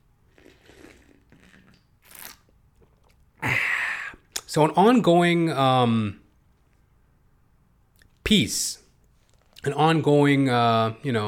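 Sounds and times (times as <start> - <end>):
low room noise: 0.0 - 11.2
person slurping coffee: 0.3 - 4.2
speech: 4.5 - 6.2, 8.3 - 8.8, 9.6 - 11.2.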